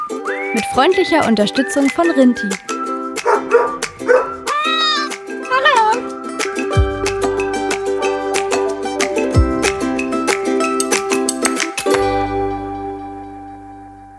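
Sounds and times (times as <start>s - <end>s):
bright steady music bed: 0.0s - 14.1s
speech: 0.6s - 2.8s
dog barks and yelps recorded in an office: 3.2s - 5.1s.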